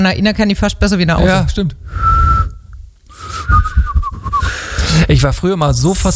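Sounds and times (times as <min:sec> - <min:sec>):
speech: 0:00.0 - 0:02.1, 0:05.0 - 0:06.1
airy breath noise: 0:01.8 - 0:05.1
person whistling while breathing in: 0:01.9 - 0:05.0.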